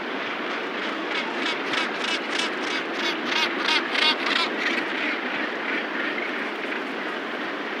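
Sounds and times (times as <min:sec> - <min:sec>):
gannet calling: 0:00.1 - 0:07.7.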